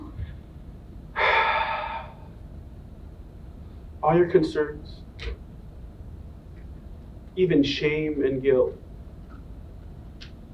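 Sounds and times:
deep exhale during a guided prayer: 1.2s - 2.4s
speech: 4.1s - 5.4s, 7.4s - 8.8s.

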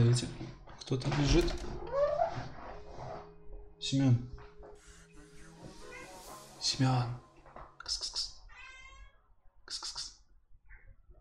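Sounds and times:
speech: 0.1s - 1.7s, 3.8s - 4.4s, 6.6s - 7.2s, 7.9s - 8.3s
cat meowing: 8.5s - 9.3s.

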